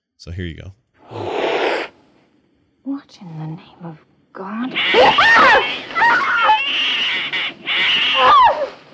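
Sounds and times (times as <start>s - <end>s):
speech: 0.2s - 1.5s, 2.8s - 7.4s
cat-attack sound effect of screeching yowls: 4.7s - 8.8s.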